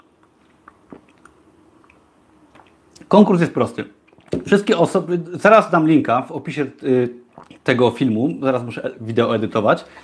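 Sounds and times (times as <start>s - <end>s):
faint swallowing: 0.0s - 3.1s, 3.9s - 4.5s, 6.8s - 8.2s
soft wet mouth clicks: 0.0s - 3.1s, 4.0s - 4.5s, 7.0s - 7.8s
person sipping water: 0.1s - 5.0s, 6.6s - 10.0s
speech: 3.0s - 10.0s.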